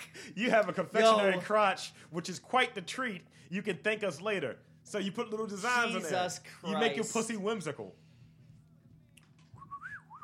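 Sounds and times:
low hum: 0.0 - 10.2
speech: 0.2 - 8.0
person whistling a brief wavering tune: 9.6 - 10.2.

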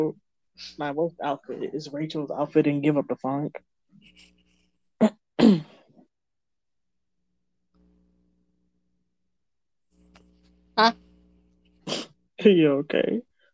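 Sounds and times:
speech: 0.0 - 4.3, 5.0 - 5.7, 10.8 - 11.0, 11.9 - 13.3
stifled burp: 5.0 - 5.9.

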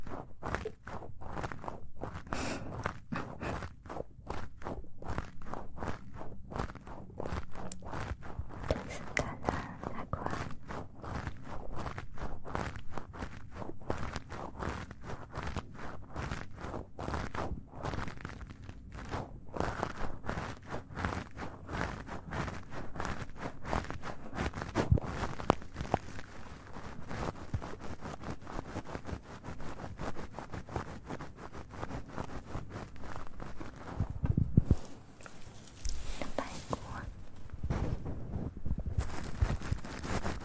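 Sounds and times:
soft bright rubbing or rustling: 0.0 - 40.4
wet mouth clicks, pops and taps: 7.6 - 7.9.

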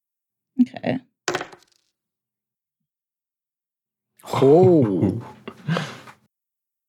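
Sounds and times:
speech: 0.6 - 1.1, 4.4 - 5.9
two twelve-sided dice clattering onto a hard table: 1.3 - 1.9.

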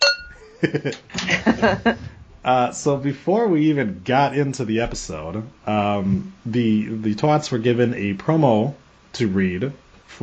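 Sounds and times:
cup clinking: 0.0 - 0.5
laughter: 0.5 - 2.1
speech: 0.6 - 10.2.

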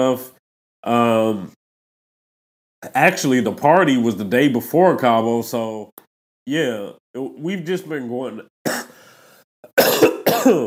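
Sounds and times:
speech: 0.0 - 1.6, 2.8 - 8.8, 9.7 - 10.6
person coughing wet and raspy: 8.7 - 9.0, 9.6 - 10.6.

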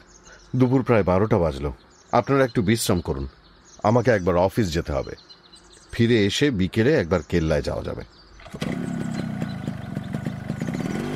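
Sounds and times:
speech: 0.5 - 5.3, 6.0 - 8.8
motorcycle engine running with ticking beat and mechanical clatter: 8.4 - 11.1.

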